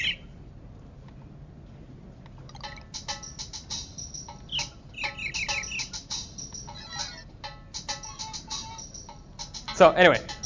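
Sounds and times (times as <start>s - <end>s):
recorded birdsong played through a laptop speaker: 0.0s - 0.3s, 4.3s - 7.2s
low steady room rumble: 0.0s - 10.4s
speech: 9.8s - 10.3s.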